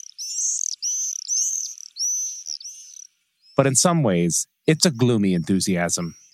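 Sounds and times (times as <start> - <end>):
swifts screaming in shrill high-pitched bursts: 0.0 - 3.2
speech: 3.6 - 6.2.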